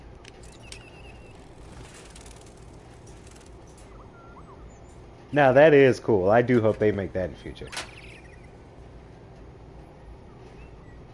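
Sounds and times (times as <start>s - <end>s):
bird chirps: 0.4s - 5.4s, 7.4s - 11.1s
speech: 5.3s - 7.8s.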